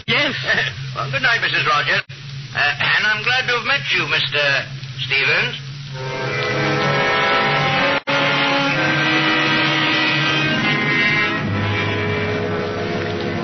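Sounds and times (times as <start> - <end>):
speech: 0.3 - 6.3
car engine droning while driving: 5.9 - 13.4.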